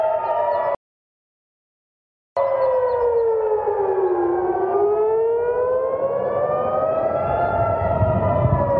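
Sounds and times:
air raid sirens wailing in Israel during rocket launches: 0:00.0 - 0:00.8, 0:02.4 - 0:08.7.

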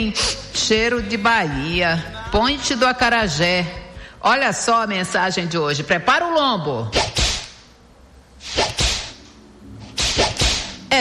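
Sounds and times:
speech: 0:00.0 - 0:07.2
whip cracking with a whooshing lash: 0:06.9 - 0:07.6, 0:08.4 - 0:09.2, 0:10.0 - 0:10.9.

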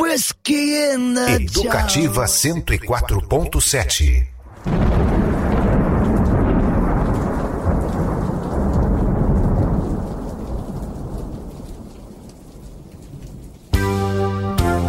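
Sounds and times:
speech: 0:00.2 - 0:05.2
steady rain pattering: 0:01.4 - 0:14.7
long heavy roll of thunder: 0:04.4 - 0:13.8.

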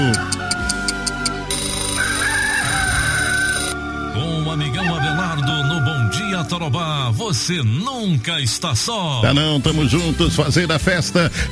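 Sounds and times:
steady rhythmic ticking: 0:00.0 - 0:03.8
rooster crowing: 0:01.5 - 0:03.9, 0:04.6 - 0:06.5
speech: 0:06.4 - 0:11.4.

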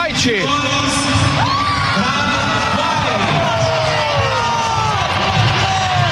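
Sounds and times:
speech: 0:00.2 - 0:01.6
large stadium crowd cheering: 0:00.4 - 0:06.1
whoops and shouts from stadium crowd: 0:01.3 - 0:06.1
large stadium crowd applauding: 0:01.4 - 0:06.1.

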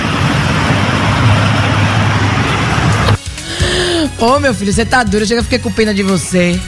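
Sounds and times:
low engine hum: 0:00.0 - 0:03.2
free-flowing road traffic roar at the entrance to Narandiba on the Paralela: 0:00.0 - 0:04.2
speech: 0:04.2 - 0:06.6.

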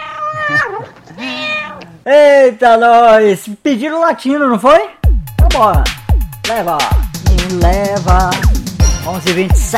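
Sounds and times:
cat meowing with drawn-out bending calls: 0:00.0 - 0:02.0
speech: 0:02.1 - 0:09.7.

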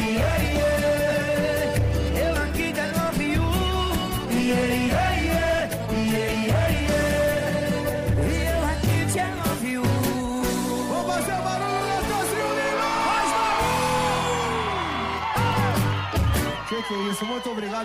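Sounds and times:
loud driving party music: 0:00.0 - 0:17.3
crowd shouting and whooping: 0:11.2 - 0:17.8
speech: 0:16.8 - 0:17.8.

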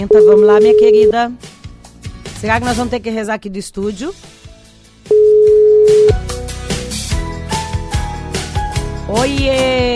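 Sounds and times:
telephone ringback tone on a call from a radio studio to a listener: 0:00.0 - 0:01.2, 0:05.1 - 0:06.2
speech: 0:00.0 - 0:01.5, 0:02.4 - 0:04.4, 0:09.1 - 0:09.9.

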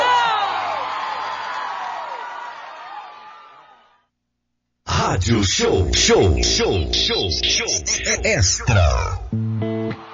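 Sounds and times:
crowd cheering and whooping: 0:00.0 - 0:04.0, 0:09.6 - 0:10.1
speech: 0:05.1 - 0:09.5.

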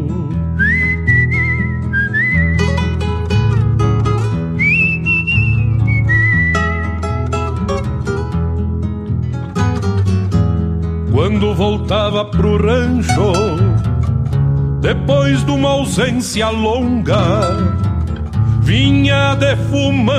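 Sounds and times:
steady guitar accompaniment: 0:00.0 - 0:20.1
person whistling a slow mournful tune: 0:00.5 - 0:02.9, 0:04.6 - 0:07.2
speech: 0:11.4 - 0:13.6, 0:14.8 - 0:17.8, 0:18.7 - 0:20.1.

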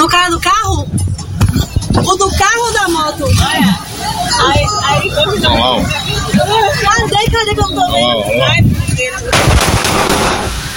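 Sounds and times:
low murmurs: 0:00.0 - 0:09.3
speech: 0:04.4 - 0:10.6
single gunshot: 0:09.3 - 0:10.7.

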